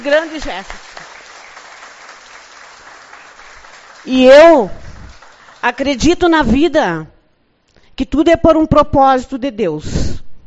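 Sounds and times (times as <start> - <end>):
speech: 0.0 - 0.9, 4.0 - 4.8, 5.6 - 7.1, 8.0 - 10.2
audience applause for a gathering's tribute: 0.0 - 5.9.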